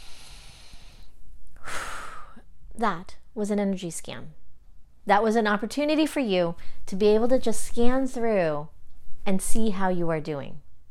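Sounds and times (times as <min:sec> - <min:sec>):
deep breath: 0:00.0 - 0:02.5
speech: 0:02.8 - 0:04.4, 0:05.0 - 0:10.6.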